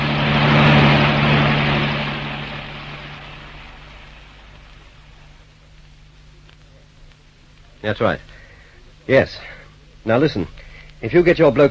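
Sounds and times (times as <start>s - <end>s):
car engine driving hard: 0.0s - 5.4s
speech: 7.8s - 8.4s, 9.1s - 11.6s.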